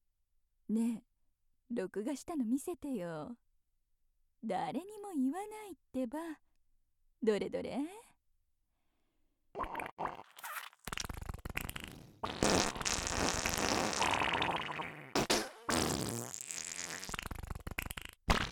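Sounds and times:
speech: 0.7s - 1.1s, 1.7s - 3.4s, 4.4s - 6.5s, 7.2s - 8.1s
middle-aged woman farting on a toilet: 9.6s - 18.5s.

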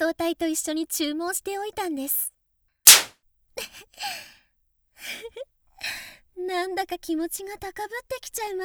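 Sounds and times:
speech: 0.1s - 2.4s, 3.6s - 4.4s, 5.0s - 8.6s
whip crack: 2.9s - 3.1s.

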